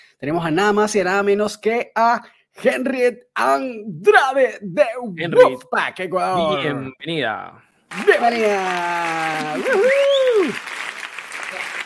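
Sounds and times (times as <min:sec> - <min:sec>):
speech: 0:00.2 - 0:10.7
canned applause of a crowd clapping: 0:07.9 - 0:11.8.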